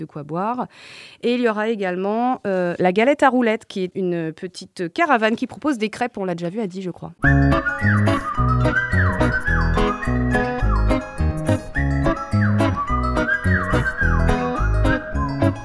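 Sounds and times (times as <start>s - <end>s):
speech: 0.0s - 9.2s
rhythmic musical backing with thumping beat and bass: 7.2s - 15.6s
whistled blackbird-like melody: 7.2s - 15.6s.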